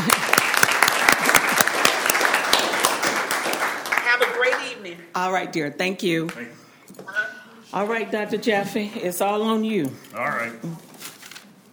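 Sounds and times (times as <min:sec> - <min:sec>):
audience applauding a woman in Jacksonville: 0:00.0 - 0:04.8
speech: 0:05.2 - 0:07.1, 0:07.7 - 0:10.8.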